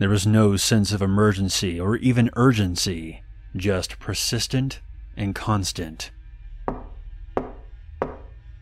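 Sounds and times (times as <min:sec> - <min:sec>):
speech: 0:00.0 - 0:06.2
low steady hum: 0:00.0 - 0:08.5
knocking on a wooden front door: 0:06.7 - 0:08.4.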